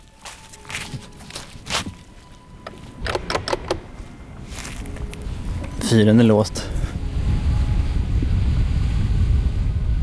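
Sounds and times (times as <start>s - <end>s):
footsteps crunching along an outdoor path: 0.0s - 3.0s, 3.9s - 6.0s
strong icy wind blowing across a hilltop: 2.5s - 10.0s
speech: 5.9s - 6.8s.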